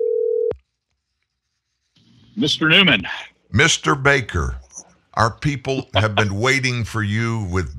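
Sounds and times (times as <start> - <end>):
telephone call connecting tone: 0.0 - 0.5
speech: 2.4 - 4.6, 5.2 - 7.7
laughter: 2.8 - 4.6, 5.2 - 7.7.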